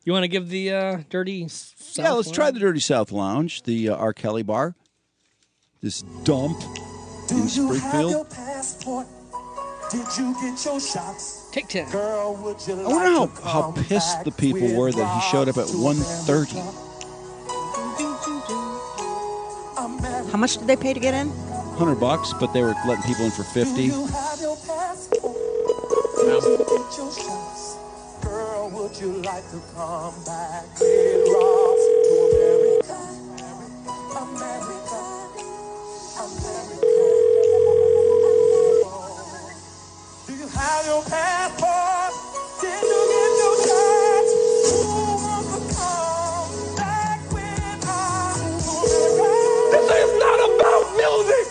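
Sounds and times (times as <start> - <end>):
speech: 0.0 - 4.8, 5.8 - 9.2, 9.9 - 16.9, 20.3 - 25.4, 26.2 - 27.7, 28.8 - 31.9, 40.6 - 41.9
busy music: 5.8 - 51.4
telephone ringback tone of an unanswered call: 25.1 - 26.9, 30.8 - 32.8, 36.8 - 38.9, 42.7 - 45.2, 48.8 - 51.2.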